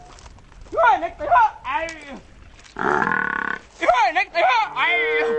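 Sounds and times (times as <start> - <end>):
man shouting to herd water buffalo, sheep and cows on a parched wasteland: 0.7 - 2.3, 3.8 - 5.3.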